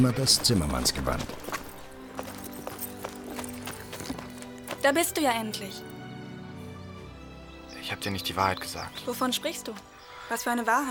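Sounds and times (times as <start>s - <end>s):
speech: 0.0s - 1.5s, 4.8s - 5.9s, 7.9s - 10.9s
hoofbeats of a horse as a rider arrives on horseback: 0.0s - 5.1s.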